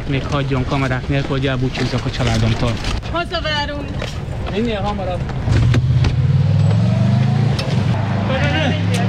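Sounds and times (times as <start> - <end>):
speech: 0.1 - 5.7, 8.3 - 9.0
voices: 1.4 - 6.2
car engine rumbling as the car pulls off: 1.7 - 8.8.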